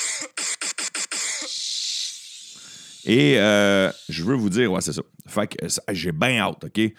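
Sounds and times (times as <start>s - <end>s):
person coughing: 0.0s - 1.6s
breathy hiss: 0.0s - 4.9s
speech: 0.2s - 0.5s, 3.1s - 6.9s.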